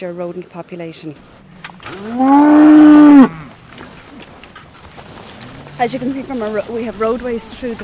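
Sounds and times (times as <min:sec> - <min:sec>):
speech: 0:00.0 - 0:03.4, 0:05.8 - 0:07.8
dairy cow mooing on a farm: 0:01.8 - 0:03.5.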